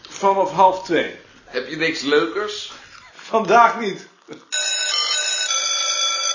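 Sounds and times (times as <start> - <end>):
speech: 0.2 - 4.5
electric doorbell ringing: 4.5 - 6.3.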